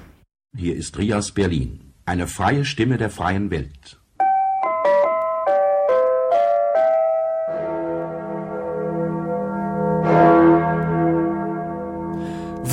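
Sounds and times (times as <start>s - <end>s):
speech: 0.6s - 4.0s
bright chime notes: 4.2s - 10.6s
large deep bell tolling in the belfry of Rathaus Schöneberg: 6.8s - 12.7s.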